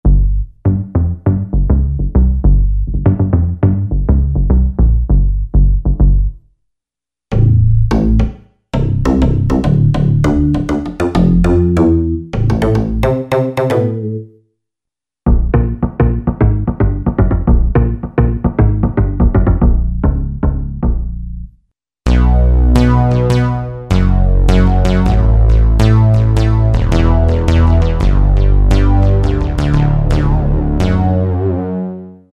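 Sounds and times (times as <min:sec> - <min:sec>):
synth bass: 0:00.0 - 0:06.4, 0:07.3 - 0:14.4, 0:15.3 - 0:32.3.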